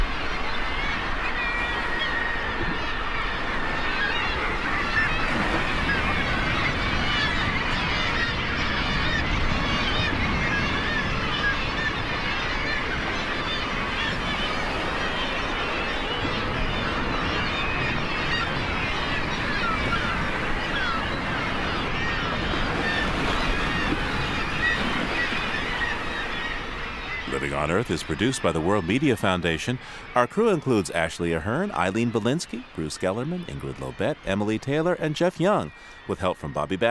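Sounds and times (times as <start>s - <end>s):
low roar of surf: 0.0s - 36.8s
seabird colony calls of gulls and kittiwakes: 0.0s - 36.8s
speech: 27.6s - 36.8s.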